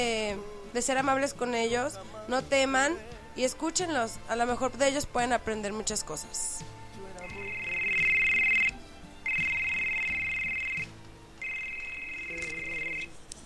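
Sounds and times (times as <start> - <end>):
speech: 0.0 - 6.8
telephone ringing with a high warbling electronic tone: 7.3 - 13.1.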